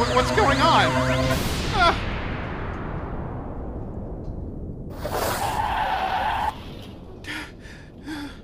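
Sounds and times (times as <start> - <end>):
speech: 0.2 - 2.1
car tires skidding as a vehicle drives through a border crossing: 5.0 - 6.6.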